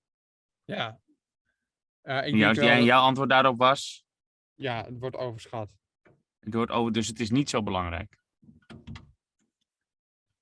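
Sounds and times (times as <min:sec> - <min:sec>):
speech: 0:00.7 - 0:01.0, 0:02.0 - 0:04.0, 0:04.6 - 0:05.8, 0:06.4 - 0:08.2
door clicks as it settles: 0:08.6 - 0:09.1.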